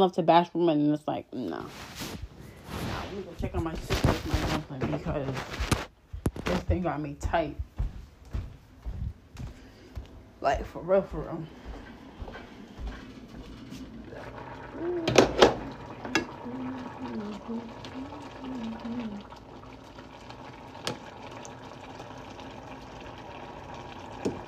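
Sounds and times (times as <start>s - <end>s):
speech: 0.0s - 5.9s, 6.5s - 7.7s, 10.4s - 11.6s, 14.8s - 15.3s, 17.4s - 19.3s
water bubbling and hissing at a rolling boil in a pot: 2.6s - 7.1s, 10.3s - 24.4s.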